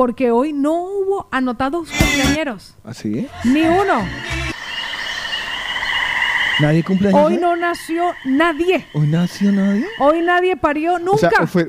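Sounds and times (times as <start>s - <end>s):
speech: 0.0s - 4.4s, 6.6s - 11.6s
short deeper croaking bursts: 3.3s - 11.1s
shrill cricket chorus trilling: 3.3s - 11.4s.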